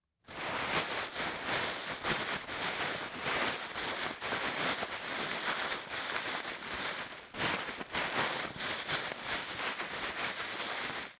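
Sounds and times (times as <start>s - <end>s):
plastic bag rustling: 0.3s - 11.1s.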